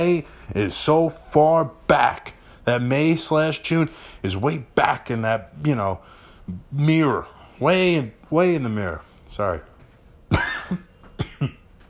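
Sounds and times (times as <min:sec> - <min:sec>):
speech: 0:00.0 - 0:09.7, 0:10.3 - 0:11.6
person coughing: 0:10.3 - 0:11.7.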